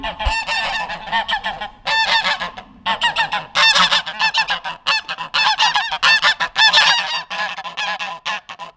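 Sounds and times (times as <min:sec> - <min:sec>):
geese honking loudly in Langel, Cologne, Germany: 0:00.0 - 0:08.4
speech: 0:01.1 - 0:01.6.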